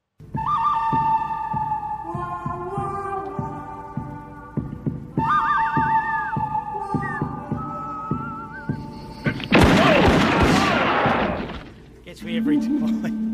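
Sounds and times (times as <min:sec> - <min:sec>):
whistled western theme music with sustained tones and thumping beat: 0:00.2 - 0:03.0, 0:05.2 - 0:11.6
speech: 0:12.3 - 0:13.2.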